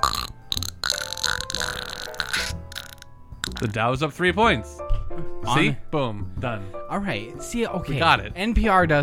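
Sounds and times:
sputtering fart noises: 0.0s - 3.8s
speech: 3.6s - 9.0s.

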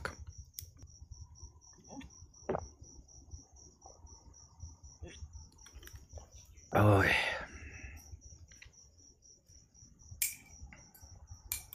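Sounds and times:
crickets chirping: 0.0s - 11.7s.

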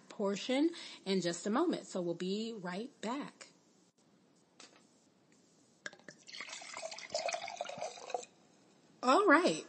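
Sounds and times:
speech: 0.2s - 3.5s, 9.0s - 9.6s
drink pouring into a glass: 5.9s - 8.4s.

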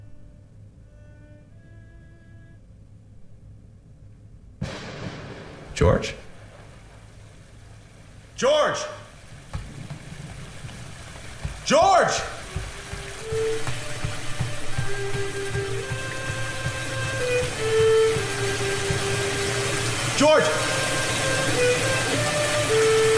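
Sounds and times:
running water that won't shut off, rushing: 5.7s - 23.1s
speech: 5.8s - 6.2s, 8.4s - 9.0s, 11.7s - 12.4s
person shouting: 8.4s - 9.0s, 11.7s - 12.4s.

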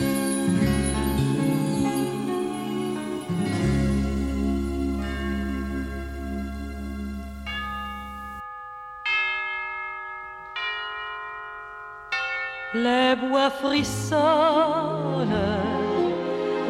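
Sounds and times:
person singing with vibrato: 0.0s - 6.2s, 12.7s - 16.6s
music: 0.0s - 8.4s, 13.2s - 16.6s
church bells tolling: 0.0s - 14.5s.

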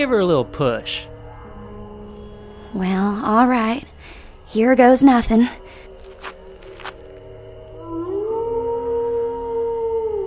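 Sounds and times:
speech: 0.0s - 1.1s, 2.7s - 3.9s, 4.5s - 5.6s
wolves howling while going after cattle: 0.0s - 3.8s, 6.5s - 10.2s.

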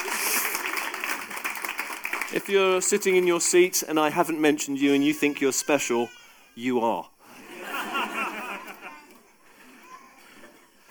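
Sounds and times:
audience clapping steadily: 0.0s - 3.6s
speech: 2.3s - 7.1s
laughter: 7.3s - 9.2s.

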